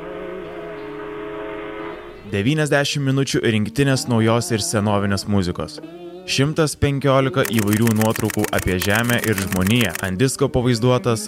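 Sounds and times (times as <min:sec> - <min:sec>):
train whistle signal blast: 0:00.0 - 0:02.3
speech: 0:02.3 - 0:11.2.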